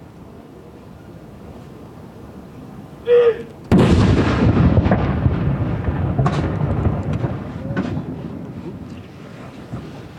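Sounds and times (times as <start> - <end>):
commander calling out: 3.0 - 3.5
cannon firing a gun salute honoring a deceased king: 3.7 - 8.5.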